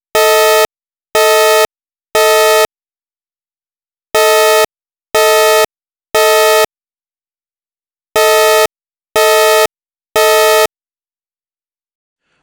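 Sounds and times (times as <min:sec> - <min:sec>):
alarm tone: 0:00.1 - 0:02.7, 0:04.2 - 0:06.7, 0:08.2 - 0:10.7.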